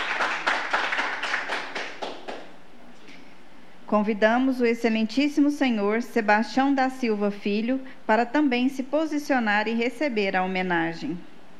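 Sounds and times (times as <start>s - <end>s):
crowd applauding warmly: 0.0s - 2.5s
speech: 3.9s - 11.3s.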